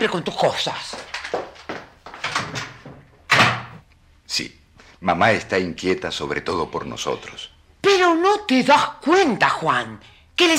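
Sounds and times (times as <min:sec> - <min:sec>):
speech: 0:00.0 - 0:01.1, 0:04.4 - 0:10.5
door slamming shut: 0:02.2 - 0:03.8.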